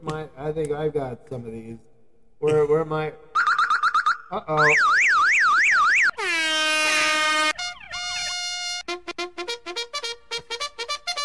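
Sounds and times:
speech: 0.1s - 3.3s, 4.3s - 5.0s
warbling siren-like tone: 3.4s - 8.6s
air horn sound effect blasts: 6.2s - 11.2s.

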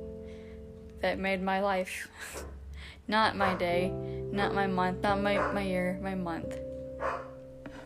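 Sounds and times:
speech: 1.1s - 2.5s, 3.1s - 7.1s
male dog barking: 5.4s - 5.6s, 7.0s - 7.4s.

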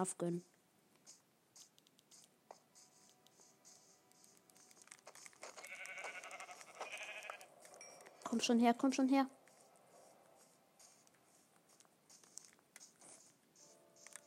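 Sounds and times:
speech: 0.0s - 0.5s, 8.3s - 9.4s
sheep bleat in a video game: 5.6s - 7.5s.

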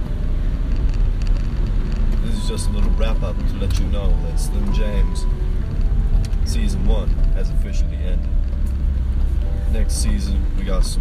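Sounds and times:
road and engine rumble inside a moving car cabin: 0.0s - 10.9s
speech: 2.5s - 5.5s, 6.5s - 8.4s, 9.7s - 10.9s.

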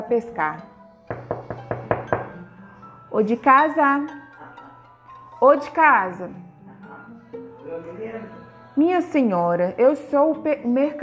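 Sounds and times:
speech: 0.0s - 0.8s, 3.1s - 4.2s, 5.4s - 6.5s, 7.8s - 11.0s
servant knocking on a fisherman's wooden door: 1.1s - 2.4s.

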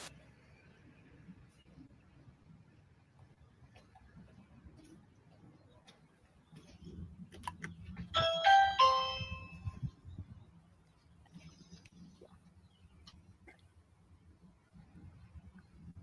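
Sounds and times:
electronic camera doorbell two-note ding-dong chime at a house: 8.2s - 9.6s.

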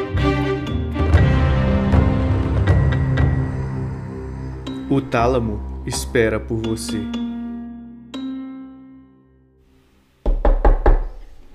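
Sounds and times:
sustained musical notes: 0.0s - 9.6s
speech: 4.9s - 7.2s
heavy knocking on a door: 10.2s - 11.2s.

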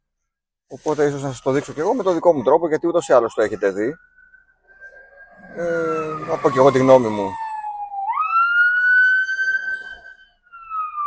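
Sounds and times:
speech: 0.7s - 4.2s, 5.6s - 7.4s
faint traffic rumble: 0.8s - 9.2s
ambulance siren wailing: 1.2s - 11.0s.

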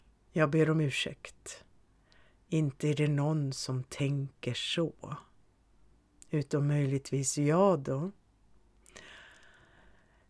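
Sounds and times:
speech: 0.4s - 1.7s, 2.5s - 5.3s, 6.3s - 8.2s
soft breathy exhale: 8.9s - 10.2s.

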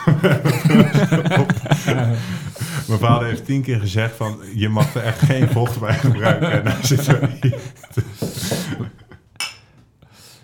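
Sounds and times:
laughter: 0.0s - 9.2s
speech: 0.2s - 1.2s, 2.9s - 8.9s
glasses clinking in a toast: 9.4s - 9.7s.

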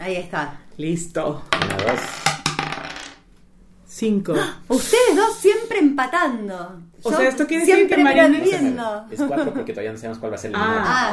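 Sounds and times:
speech: 0.0s - 2.4s, 4.0s - 11.1s
dice rolling on a hard table: 1.5s - 3.3s.

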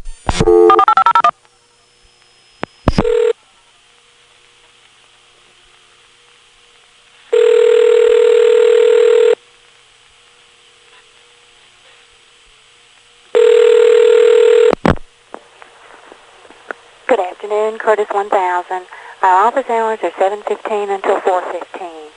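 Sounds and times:
computer automatically dialing a phone number: 0.3s - 1.3s, 2.8s - 3.3s, 7.3s - 9.4s, 13.3s - 14.8s
phone line ringing: 0.4s - 1.3s, 2.9s - 3.3s, 7.3s - 9.4s, 13.3s - 14.8s
speech: 17.8s - 22.0s.

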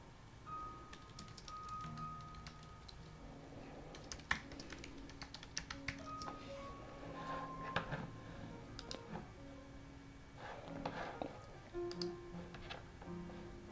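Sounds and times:
faint tonal hum: 0.0s - 13.7s
keyboard typing: 0.9s - 3.2s, 3.8s - 6.4s, 8.7s - 9.2s, 10.8s - 12.7s.

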